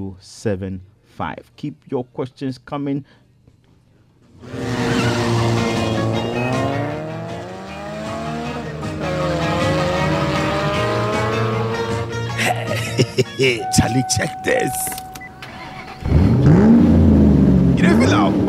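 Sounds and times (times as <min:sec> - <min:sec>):
speech: 0:00.0 - 0:03.2, 0:13.2 - 0:15.0
faint tire squeal: 0:04.4 - 0:07.0
car engine revving through the gears: 0:04.4 - 0:12.2, 0:14.3 - 0:18.4
laughter: 0:12.3 - 0:14.9.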